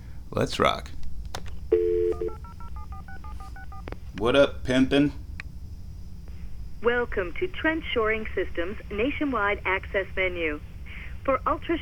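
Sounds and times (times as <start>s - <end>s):
speech: 0.3s - 1.0s, 4.2s - 5.2s, 6.8s - 11.8s
telephone keypad tones dialing a toll-free number: 1.7s - 3.8s.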